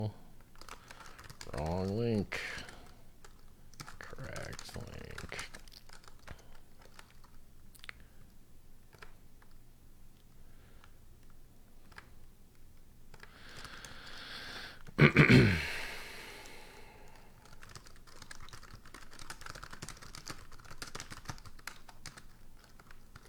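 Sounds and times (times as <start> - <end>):
faint hum: 0.0 - 23.2
computer keyboard typing: 0.4 - 8.0, 8.8 - 9.6, 10.8 - 14.2, 17.1 - 23.2
speech: 1.6 - 2.7.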